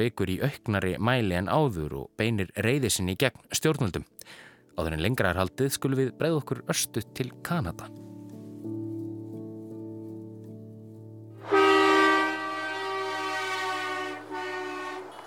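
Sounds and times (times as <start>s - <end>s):
speech: 0.0s - 8.1s
truck horns blaring at a protest in Ontario: 11.4s - 15.2s.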